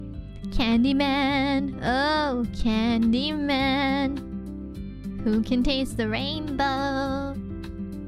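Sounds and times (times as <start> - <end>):
person singing: 0.5 - 4.2, 5.2 - 7.4.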